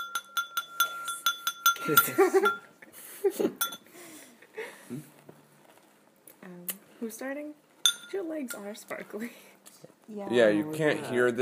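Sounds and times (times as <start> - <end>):
bowl clinking while someone eats: 0.0 - 2.8, 3.6 - 3.9, 7.8 - 8.7
speech: 1.8 - 3.8, 4.9 - 5.1, 6.4 - 9.5, 10.1 - 11.3.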